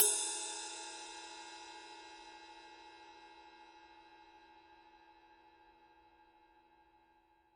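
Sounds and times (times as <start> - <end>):
20-inch heavy ride cymbal: 0.0 - 2.6.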